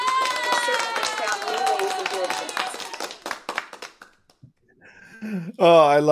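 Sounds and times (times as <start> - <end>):
people cheering: 0.0 - 3.9
applause: 0.0 - 4.4
speech: 5.2 - 6.1.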